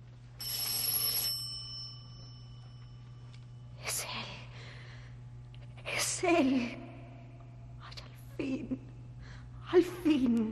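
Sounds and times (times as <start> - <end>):
telephone ringing: 0.4 - 3.4
speech: 6.2 - 6.8, 8.4 - 8.8.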